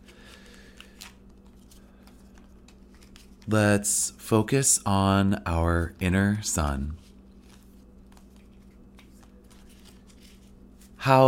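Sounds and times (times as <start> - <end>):
tarot cards being shuffled: 0.0 - 3.5, 5.7 - 11.0
low steady hum: 0.0 - 11.2
speech: 3.5 - 7.0, 11.1 - 11.2.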